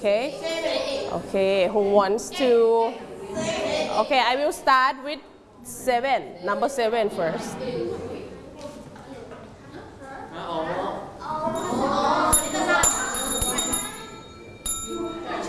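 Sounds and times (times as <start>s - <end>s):
speech: 0.0s - 8.1s
busy background of voices: 0.0s - 15.4s
small bell being struck: 11.6s - 15.4s.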